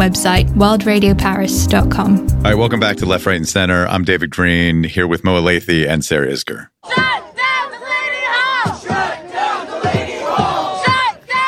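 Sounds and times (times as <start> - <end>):
speech: 0.0 - 7.2
protesters shouting and chanting outside an ICE detention center in Newark, New Jersey: 6.8 - 11.4.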